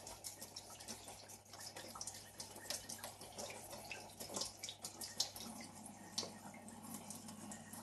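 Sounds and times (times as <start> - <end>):
cold water running from a tap: 0.0 - 7.8.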